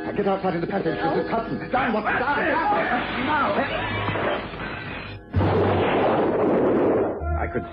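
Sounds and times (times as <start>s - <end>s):
speech: 0.2s - 4.1s, 7.5s - 7.7s
parcel bomb explosion: 5.3s - 7.2s.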